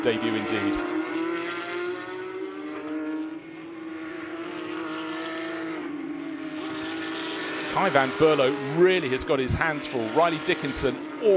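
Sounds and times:
speech: 0:00.0 - 0:01.0, 0:07.8 - 0:11.3
Porsche 992 Carrera Cup race car engines screaming at high revs: 0:00.0 - 0:11.3.

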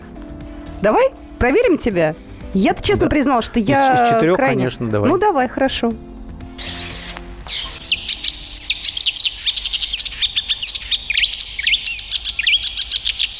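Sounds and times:
speech: 0:00.8 - 0:06.1
reed warbler singing: 0:06.4 - 0:13.3.

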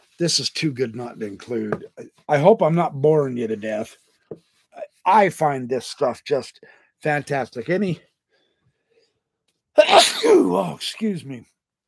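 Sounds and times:
speech: 0:00.2 - 0:08.1, 0:09.8 - 0:11.5
person sneezing: 0:09.8 - 0:10.8.

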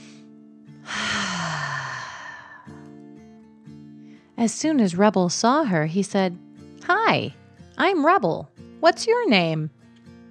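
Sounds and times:
deep breath in and out: 0:00.0 - 0:02.9
speech: 0:04.4 - 0:09.8.

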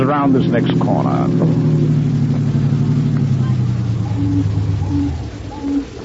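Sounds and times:
speech: 0:00.0 - 0:01.7, 0:04.2 - 0:05.2
car engine driving: 0:00.0 - 0:06.0.

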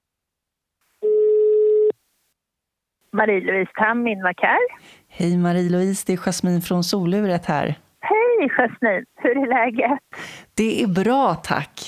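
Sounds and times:
electronic ringback tone from an outgoing phone call: 0:01.0 - 0:01.9
speech: 0:03.1 - 0:11.8.

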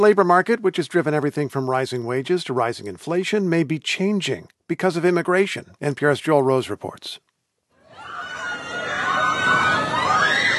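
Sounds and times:
speech: 0:00.0 - 0:07.3
crowd screaming and cheering at a beachside amusement park in Rehoboth Beach Delaware: 0:07.8 - 0:10.5.

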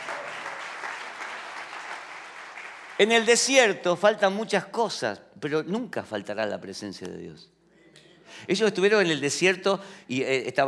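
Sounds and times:
church congregation applauding a sermon: 0:00.0 - 0:03.5
speech: 0:03.0 - 0:07.6, 0:08.3 - 0:10.6.

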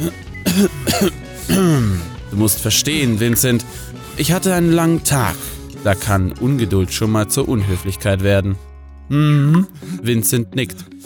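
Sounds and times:
man clearing his throat: 0:00.0 - 0:02.2
man giving embarrassed coughs: 0:00.0 - 0:02.2
speech: 0:00.0 - 0:11.0.

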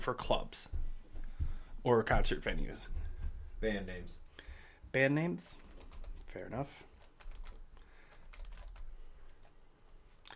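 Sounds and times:
speech: 0:00.0 - 0:00.8, 0:01.8 - 0:03.0, 0:03.6 - 0:04.2, 0:04.9 - 0:05.7, 0:06.3 - 0:06.9
typing on a computer keyboard: 0:05.5 - 0:09.6.

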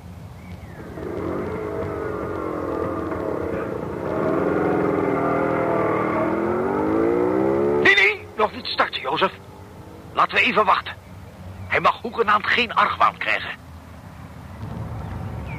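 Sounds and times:
scooter engine starting and revving: 0:00.8 - 0:08.0
speech: 0:08.5 - 0:09.4, 0:10.4 - 0:11.0, 0:11.8 - 0:13.6.

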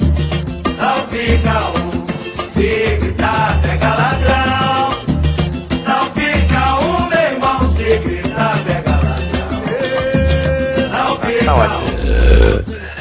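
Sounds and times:
upbeat music with singing voices: 0:00.0 - 0:12.9
loud rumbling burp: 0:11.3 - 0:12.8.

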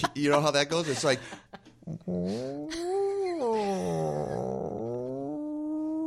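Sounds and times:
speech: 0:00.0 - 0:01.5, 0:02.1 - 0:02.8
laughter: 0:00.0 - 0:01.8
person imitating a cat yowling: 0:02.2 - 0:06.0.

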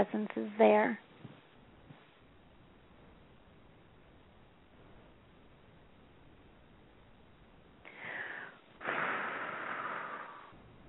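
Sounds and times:
speech: 0:00.0 - 0:01.1
slow inhale and exhale breathing: 0:07.8 - 0:10.7.

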